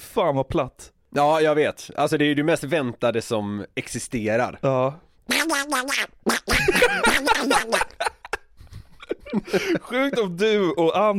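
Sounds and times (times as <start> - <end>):
speech: 0.2 - 8.2, 9.3 - 11.1
raspy nasal cartoon duck voice impression by mouth: 5.3 - 7.9
laughter: 6.5 - 10.4.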